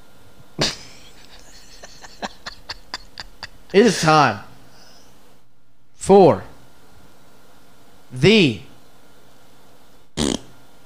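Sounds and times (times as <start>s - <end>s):
speech: 0.6s - 0.8s, 3.7s - 4.5s, 6.1s - 6.5s, 8.1s - 8.7s
laughter: 0.6s - 4.1s
short loud fart: 10.2s - 10.6s.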